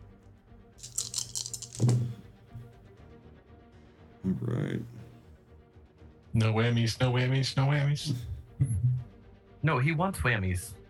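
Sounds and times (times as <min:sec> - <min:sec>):
handful of dice rattling: 0:00.8 - 0:02.2
speech: 0:04.3 - 0:05.0, 0:06.4 - 0:08.3, 0:09.6 - 0:10.8.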